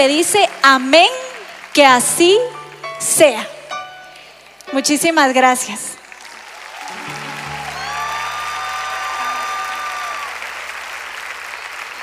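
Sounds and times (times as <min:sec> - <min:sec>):
speech: 0:00.0 - 0:03.6, 0:04.7 - 0:05.9
sustained audience applause: 0:00.1 - 0:02.9, 0:06.0 - 0:12.0.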